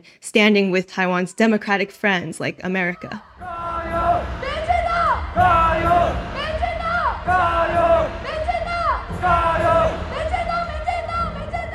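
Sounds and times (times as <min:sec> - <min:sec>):
speech: 0:00.0 - 0:03.6
large crowd at a political rally chanting in unison: 0:03.2 - 0:11.7.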